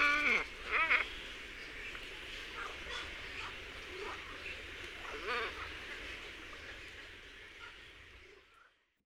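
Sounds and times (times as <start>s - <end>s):
glossy ibis croaking and grunting: 0.0s - 1.2s, 2.4s - 5.8s.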